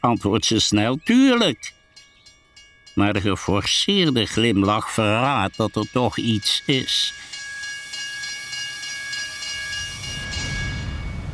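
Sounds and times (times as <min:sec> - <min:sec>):
speech: 0:00.0 - 0:01.8, 0:03.0 - 0:07.3
thin sustained high tones: 0:00.0 - 0:11.3
train steam hissing at a railway station: 0:06.1 - 0:11.3.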